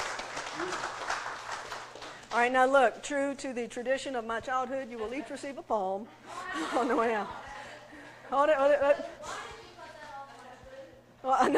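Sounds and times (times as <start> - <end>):
congregation clapping hands: 0.0 - 2.5
speech: 2.3 - 7.4, 8.3 - 9.4, 11.2 - 11.5.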